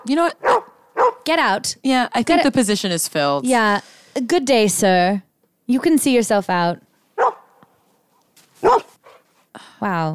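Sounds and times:
speech: 0.0s - 0.6s, 1.3s - 6.8s, 9.8s - 10.1s
dog barking: 0.4s - 1.2s, 7.2s - 7.6s, 8.6s - 9.2s
dog yipping and whining: 7.2s - 7.5s, 8.6s - 9.1s.

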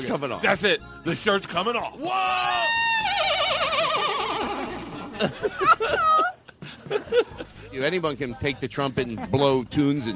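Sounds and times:
speech: 0.0s - 3.2s, 5.2s - 6.3s, 6.9s - 10.1s
horse neighing: 2.9s - 5.0s
people chuckling: 3.5s - 7.7s.

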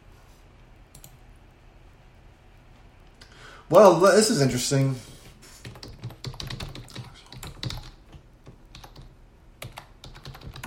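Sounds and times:
speech: 3.7s - 5.1s
typing on a computer keyboard: 5.6s - 10.6s.

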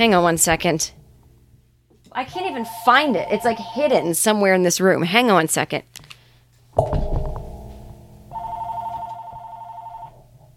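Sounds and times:
speech: 0.0s - 1.0s, 2.1s - 6.0s
landline telephone ringing with a bright electronic trill: 2.2s - 4.4s, 8.3s - 10.2s.

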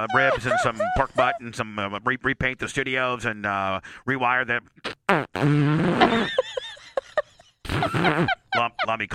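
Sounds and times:
laughter: 0.0s - 1.7s, 6.0s - 9.1s
speech: 0.0s - 6.4s, 7.8s - 9.1s
long loud buzzing fart: 4.9s - 6.4s, 7.7s - 8.4s.

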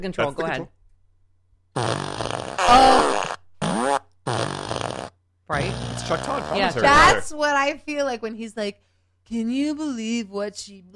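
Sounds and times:
speech: 0.0s - 0.8s, 1.8s - 3.2s, 5.5s - 10.9s
fart machine sound effect: 1.8s - 6.8s.

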